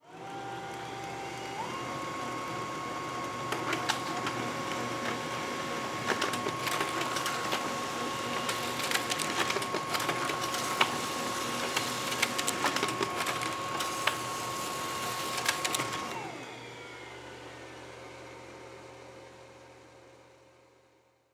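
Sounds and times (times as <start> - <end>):
laser printer: 0.0 - 17.0.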